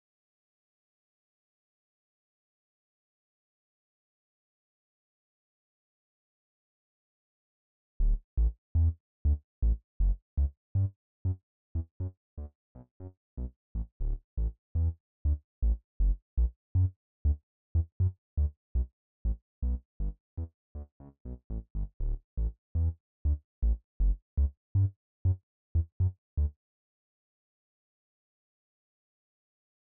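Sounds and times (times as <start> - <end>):
sub bass: 8.0 - 10.9, 13.8 - 14.9, 15.6 - 20.5, 21.5 - 26.5.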